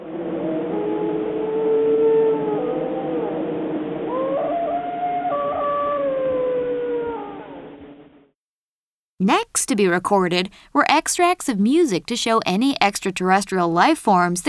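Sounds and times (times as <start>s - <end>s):
wild dogs howling: 0.0s - 8.2s
speech: 9.3s - 14.4s.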